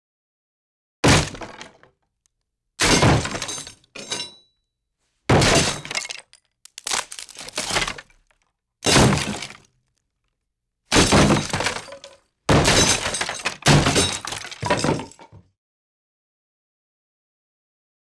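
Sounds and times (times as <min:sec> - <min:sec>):
axe impacts on wood: 0:01.0 - 0:01.8, 0:02.8 - 0:04.2, 0:05.3 - 0:08.1, 0:08.8 - 0:09.6, 0:10.9 - 0:15.2.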